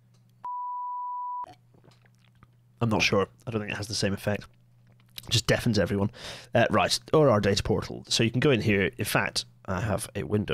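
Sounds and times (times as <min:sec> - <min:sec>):
censor beep: 0:00.4 - 0:01.5
speech: 0:02.8 - 0:04.6, 0:05.3 - 0:10.5.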